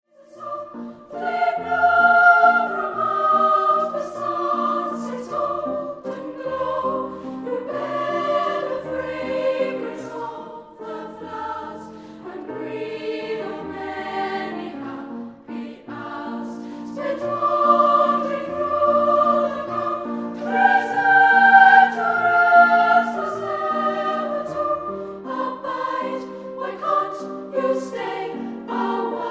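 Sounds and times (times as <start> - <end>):
children's choir singing: 0.1 - 29.2.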